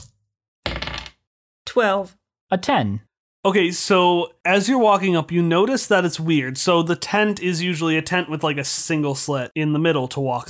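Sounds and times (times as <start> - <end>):
dice tumbling across a hard tabletop: 0.7 - 1.2
speech: 1.8 - 10.4.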